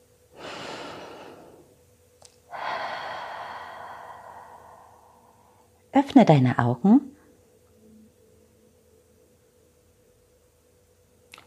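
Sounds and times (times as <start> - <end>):
deep breath in and out: 0.3 - 1.8, 2.5 - 5.8
speech: 6.0 - 7.1.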